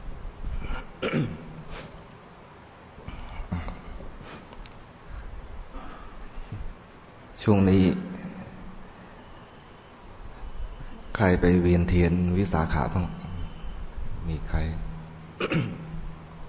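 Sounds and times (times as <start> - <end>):
person clearing throat in rough bursts: 0.6 - 1.5, 15.4 - 16.0
speech: 1.0 - 1.4, 7.5 - 8.1, 11.2 - 13.2, 14.3 - 14.9, 15.4 - 15.8.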